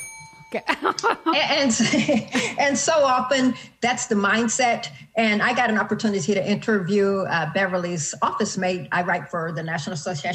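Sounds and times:
bright sustained bell tone: 0.0s - 1.8s
speech: 0.5s - 10.3s
laughter: 0.6s - 2.6s.

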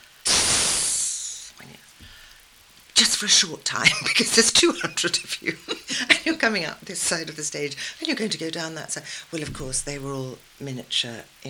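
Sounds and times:
short burst of noise: 0.2s - 1.6s
voice imitating a snake with a long sustained hiss: 0.2s - 2.0s
quiet breathy sounds: 0.8s - 2.5s
speech: 3.0s - 11.4s
laughter: 3.8s - 6.4s.

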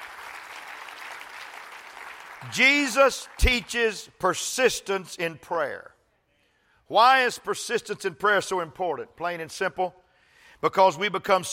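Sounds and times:
audience applause: 0.0s - 3.4s
speech: 2.4s - 5.9s, 6.9s - 10.0s, 10.6s - 11.5s.

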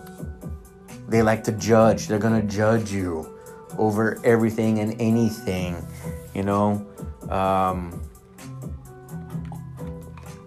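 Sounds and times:
speech: 1.1s - 8.1s
speaker sipping water with wet slurps and swallows: 8.2s - 10.4s.

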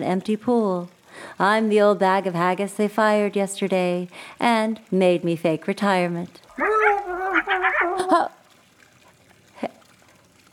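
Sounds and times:
speech: 0.0s - 6.7s, 7.9s - 8.4s
coyote howling: 6.5s - 8.3s.

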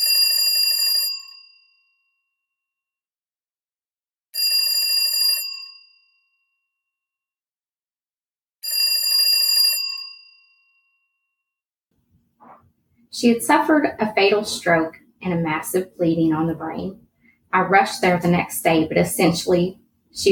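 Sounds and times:
telephone ringing in bright trilling bursts: 0.0s - 2.0s, 4.4s - 6.4s, 8.6s - 10.4s
speech: 13.1s - 20.3s.

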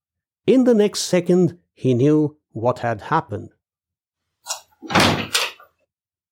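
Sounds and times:
speech: 0.5s - 3.6s
door being unlocked and opened inwards by pulling its knob: 4.5s - 5.7s
sharp door latch click: 4.9s - 5.6s.

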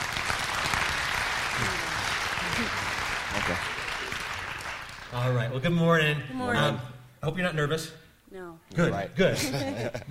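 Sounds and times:
church audience applauding: 0.0s - 5.5s
speech: 5.2s - 10.0s
laughter: 9.2s - 10.0s.

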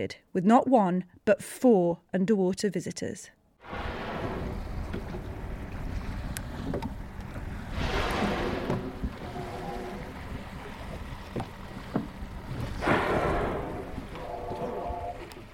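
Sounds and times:
speech: 0.0s - 3.9s
wind: 3.4s - 15.5s
fin whales blowing at the surface: 3.6s - 15.5s
water lapping against a boat: 4.1s - 15.5s.

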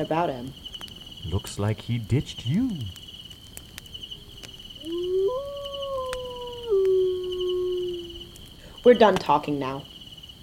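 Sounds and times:
speech: 0.0s - 3.0s, 8.8s - 9.9s
faint steady hum: 0.0s - 10.4s
hungry wolf howling: 4.8s - 8.4s.

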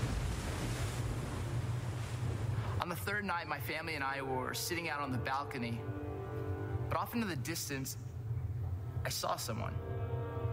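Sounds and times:
ocean waves crashing onto rocks as the tide rolls in: 0.0s - 2.9s
wind: 0.0s - 10.5s
speech: 3.1s - 6.0s, 6.9s - 8.1s, 9.0s - 10.0s.

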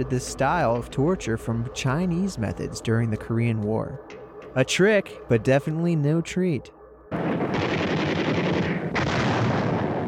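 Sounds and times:
speech: 0.0s - 7.8s
heavy artillery barrage and gunfire: 7.1s - 10.0s.

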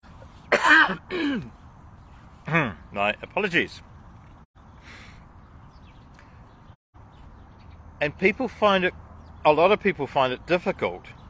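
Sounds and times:
person coughing roughly: 0.5s - 1.5s
speech: 0.8s - 1.6s, 2.5s - 3.9s, 8.0s - 11.2s.

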